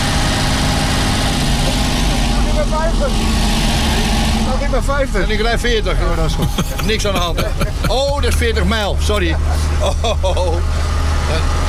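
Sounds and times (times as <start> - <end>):
old car engine running with rough throbbing rumble: 0.0 - 11.6
speech: 4.7 - 11.6
laughter: 5.9 - 11.2.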